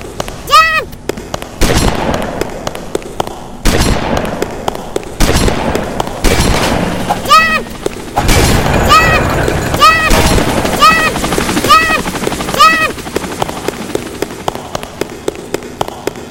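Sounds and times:
video game helicopter rotor drone: 0.0 - 16.2
video game gunfire: 1.3 - 12.0.

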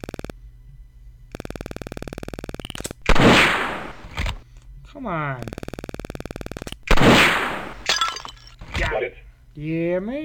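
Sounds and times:
video game gunshots at a ceramic flower pot target: 0.0 - 0.3, 1.3 - 4.4, 5.4 - 9.1
rapid ticking clicks in a video game: 0.0 - 0.4, 1.3 - 3.1, 5.4 - 7.0
speech: 5.0 - 5.6, 9.0 - 10.2.

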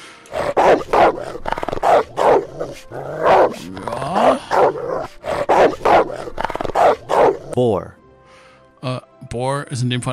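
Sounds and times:
wolf snarling and growling: 0.3 - 7.6
speech: 2.8 - 4.4, 7.6 - 8.0, 9.4 - 10.1.

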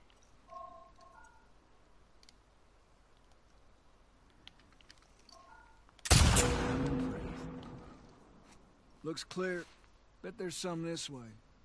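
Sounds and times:
video game gunshot: 6.1 - 8.0
speech: 9.1 - 11.4.

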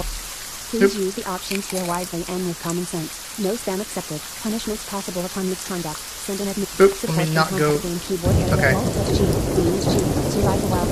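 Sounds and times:
heavy rain in a thunderstorm: 0.0 - 10.8
speech: 0.0 - 10.8
deep rumbling thunder: 7.8 - 10.8.

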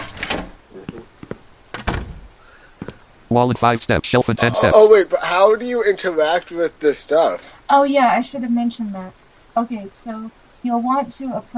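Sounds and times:
video game door sound effect clicks and knocks: 0.0 - 0.6, 1.7 - 2.3
speech: 3.3 - 11.5.

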